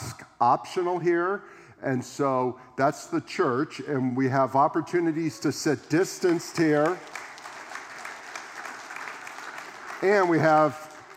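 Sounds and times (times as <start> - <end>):
speech: 0.4 - 7.2, 10.0 - 10.9
audience clapping in the open seating of a church: 5.6 - 11.1.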